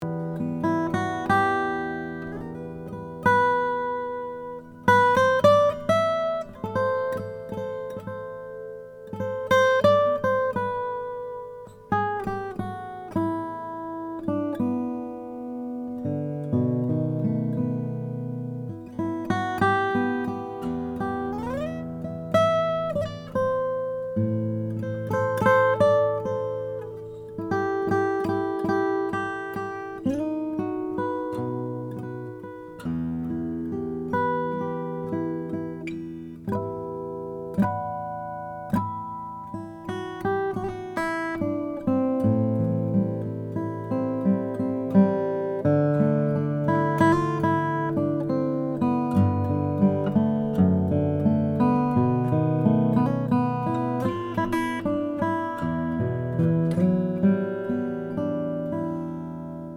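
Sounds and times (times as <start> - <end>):
koa acoustic guitar: 0.0 - 59.7.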